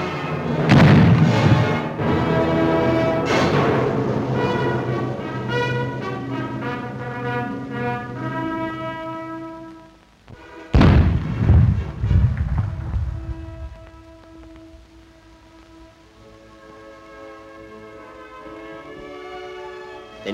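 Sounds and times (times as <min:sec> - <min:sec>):
steady brass-like tones: 0:00.0 - 0:20.3
old wooden cannon being fired: 0:00.5 - 0:04.9, 0:10.7 - 0:14.8.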